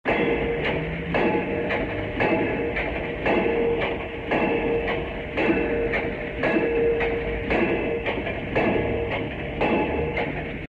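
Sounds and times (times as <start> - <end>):
pile driver: 0.1 - 10.6.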